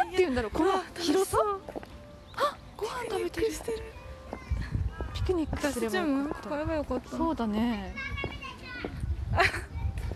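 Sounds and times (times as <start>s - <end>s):
speech: 0.3s - 1.8s, 2.4s - 4.0s, 5.3s - 9.6s
children shouting and calling while playing in an open park: 3.7s - 6.8s, 7.7s - 10.1s.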